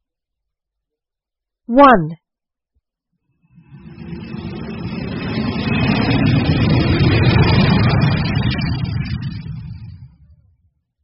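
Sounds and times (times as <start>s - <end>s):
speech: 1.7s - 2.2s
aeroplane passing by: 3.4s - 10.6s.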